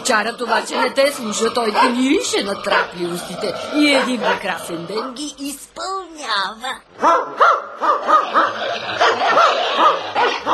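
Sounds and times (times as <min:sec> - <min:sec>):
speech: 0:00.1 - 0:10.5
dog yapping in short high-pitched barks: 0:00.4 - 0:01.0, 0:01.7 - 0:02.1, 0:02.7 - 0:03.0, 0:03.9 - 0:04.6, 0:07.0 - 0:10.5.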